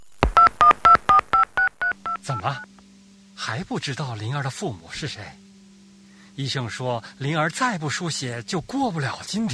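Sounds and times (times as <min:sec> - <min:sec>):
mobile phone keypad tones at a hospital in Haidian, Beijing, China: 0:00.3 - 0:02.7
speech: 0:03.5 - 0:05.5, 0:06.4 - 0:09.5.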